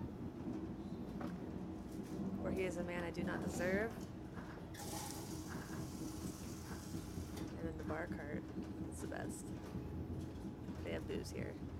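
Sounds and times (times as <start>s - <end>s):
low rumble and hum of a moving train carriage heard from inside: 0.0s - 11.7s
speech: 2.5s - 4.1s, 7.9s - 10.0s, 10.9s - 11.7s.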